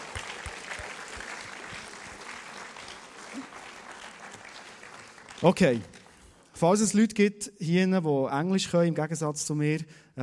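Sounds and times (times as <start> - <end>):
audience applause: 0.0 - 6.4
speech: 5.4 - 5.9, 6.6 - 10.2.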